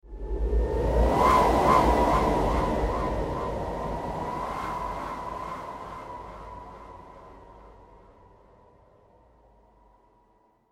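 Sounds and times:
evil wind gust whoosh: 0.1 - 8.0.

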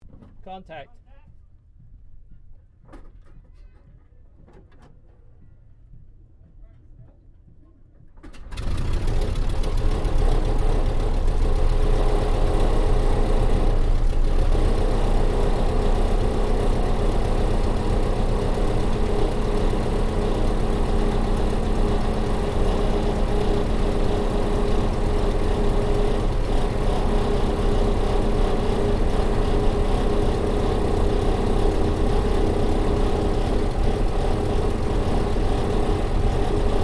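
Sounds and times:
Ryan PT-22 aircraft engine starting up heard from interior: 8.2 - 36.8.

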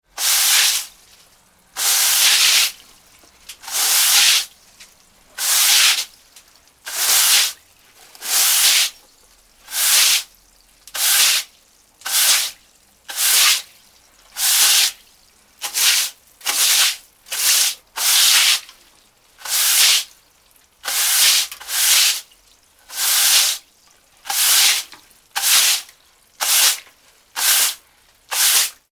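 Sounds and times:
hard bristle brush scrubbing wet floor: 0.2 - 1.0, 1.8 - 2.8, 3.6 - 4.5, 5.4 - 6.1, 6.9 - 7.6, 8.2 - 9.0, 9.7 - 10.3, 11.0 - 13.7, 14.4 - 15.0, 15.6 - 18.7, 19.4 - 20.1, 20.8 - 22.3, 22.9 - 23.6, 24.3 - 28.9.

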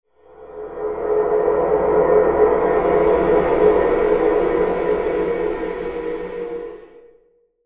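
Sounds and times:
mysterious horror spell air swell: 0.2 - 7.0.

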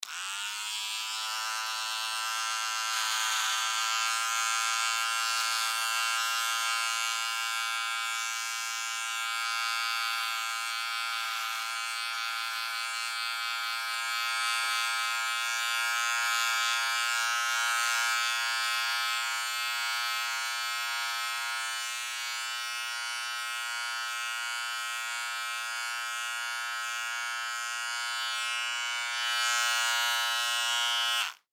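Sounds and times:
electric hair clippers running and cutting hair in a barber shop: 0.0 - 31.5.

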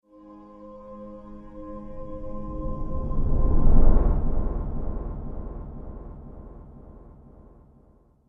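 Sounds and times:
angelic riser whoosh: 1.8 - 7.0.

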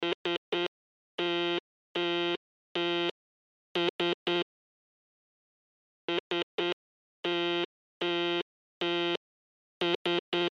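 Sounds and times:
Morse code SOS emergency signal: 0.0 - 3.2, 3.8 - 4.5, 6.1 - 9.2, 9.8 - 10.5.

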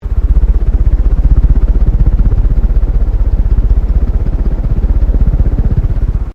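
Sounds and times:
ceiling fan running fast: 0.0 - 6.3.

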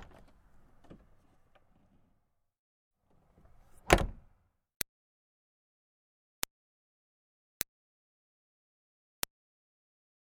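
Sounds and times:
2005 Smart Fortwo car door opening and closing lightly: 3.5 - 4.3.

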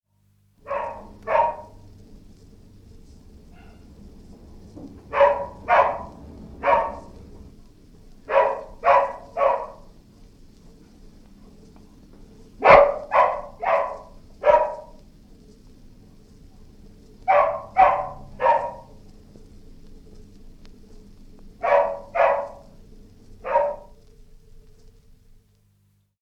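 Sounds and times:
distant dog barking: 0.6 - 1.9, 3.4 - 4.0, 4.9 - 7.6, 8.2 - 10.0, 12.6 - 15.0, 17.2 - 19.1, 21.6 - 22.8, 23.4 - 24.0.

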